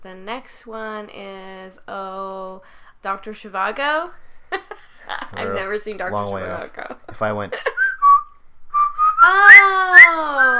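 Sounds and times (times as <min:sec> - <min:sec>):
speech: 0:00.0 - 0:07.8, 0:09.2 - 0:10.5
person whistling a war film theme tune: 0:07.8 - 0:10.5.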